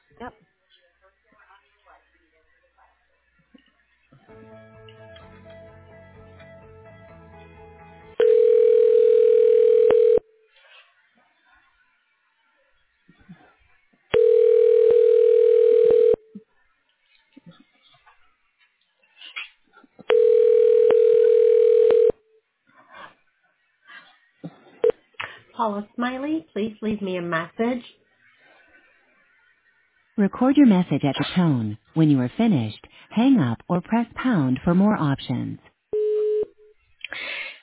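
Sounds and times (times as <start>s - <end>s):
speech: 0.2s - 0.5s, 25.6s - 28.0s, 30.2s - 35.7s
telephone ringing tones while a call is transferred to voicemail: 8.2s - 10.3s, 14.2s - 16.3s, 20.1s - 22.2s, 36.0s - 36.6s.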